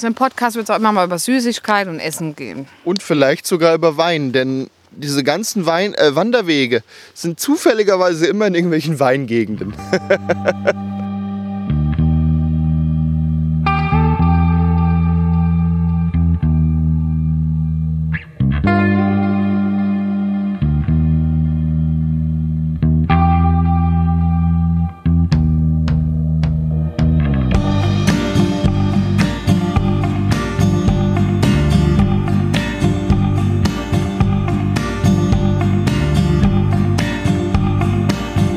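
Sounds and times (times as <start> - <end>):
speech: 0.0 - 11.0
laughter: 9.6 - 11.0
steady low bass: 9.6 - 38.5
sustained effects-heavy synth chords: 9.7 - 17.7, 23.1 - 38.5.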